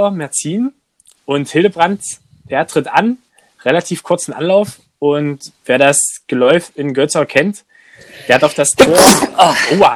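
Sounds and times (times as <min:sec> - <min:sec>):
speech: 0:00.0 - 0:09.9
person sneezing: 0:08.1 - 0:09.9.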